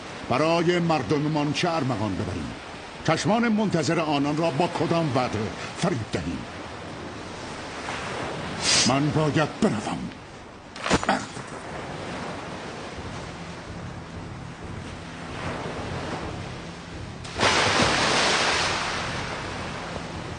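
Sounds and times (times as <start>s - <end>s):
roaring sea waves: 0.0s - 20.3s
speech: 0.3s - 6.6s, 8.8s - 10.2s.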